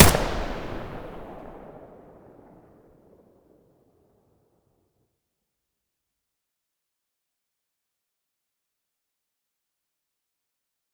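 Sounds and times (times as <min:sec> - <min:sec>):
AK-74U rifle gunshot at the muzzle: 0:00.0 - 0:01.8.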